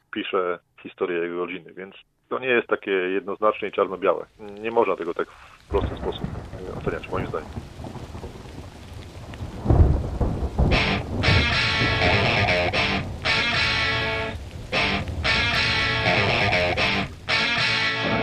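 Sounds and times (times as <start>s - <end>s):
speech: 0.2s - 8.0s
sudden heavy summer downpour: 2.9s - 18.2s
deep rumble of summer thunder: 4.4s - 18.2s.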